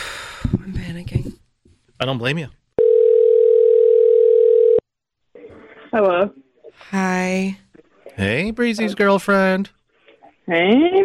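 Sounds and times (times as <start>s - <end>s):
speech: 0.4s - 1.4s, 2.0s - 2.6s, 5.9s - 7.6s, 8.2s - 9.8s, 10.5s - 11.0s
telephone ringback tone: 2.8s - 4.8s.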